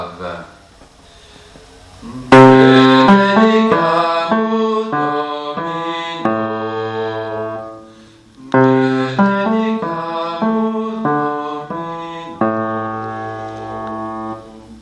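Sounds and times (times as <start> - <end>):
men singing a Christmas carol coda in low voices with echoes: 2.0 - 7.8, 8.4 - 14.3.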